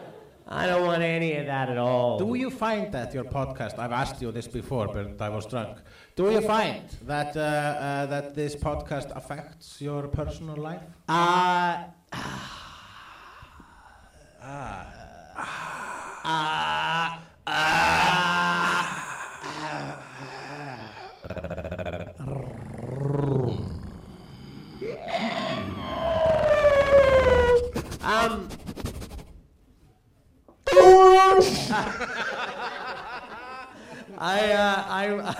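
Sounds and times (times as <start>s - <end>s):
speech: 0.5s - 12.4s, 14.4s - 15.6s, 16.2s - 18.0s, 34.2s - 35.3s
breathy gasps: 5.8s - 6.2s, 12.1s - 17.8s, 18.6s - 21.4s, 23.5s - 25.7s, 33.7s - 34.2s
person vocally imitating a T-Rex roar: 13.8s - 28.3s
laughter: 31.4s - 35.3s.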